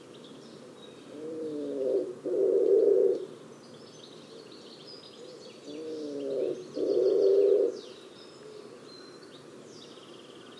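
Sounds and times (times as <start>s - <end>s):
bird giving low soft coos: 0.9s - 3.3s, 5.1s - 8.9s.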